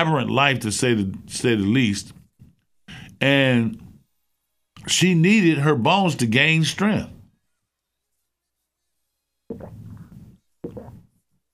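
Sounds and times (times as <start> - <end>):
speech: 0.0 - 2.2, 3.2 - 3.9, 4.8 - 7.2
person drinking water and swallowing: 9.5 - 11.1.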